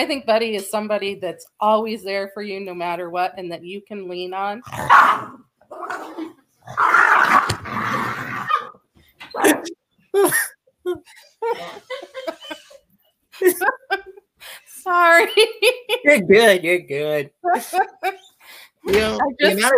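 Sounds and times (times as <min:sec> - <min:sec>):
speech: 0:00.0 - 0:07.0, 0:09.4 - 0:12.4, 0:13.4 - 0:19.7
dog barking and growling: 0:04.7 - 0:09.8
laughter: 0:09.4 - 0:12.8, 0:13.4 - 0:14.2, 0:15.1 - 0:16.5, 0:17.4 - 0:19.7.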